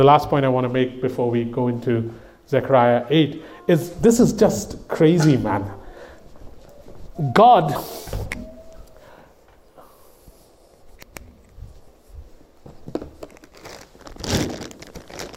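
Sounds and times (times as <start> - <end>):
speech: 0.0 - 5.8, 7.2 - 8.4
rummaging through a bag of pens: 13.2 - 15.3.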